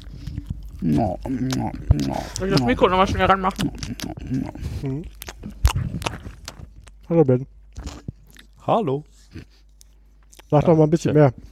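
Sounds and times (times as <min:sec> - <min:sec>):
mouth clicks: 0:00.0 - 0:08.6
person chewing and smacking while eating: 0:00.0 - 0:10.8
soft low rumbles: 0:00.0 - 0:11.5
speech: 0:00.8 - 0:05.6, 0:07.1 - 0:07.6, 0:08.7 - 0:09.5, 0:10.5 - 0:11.5.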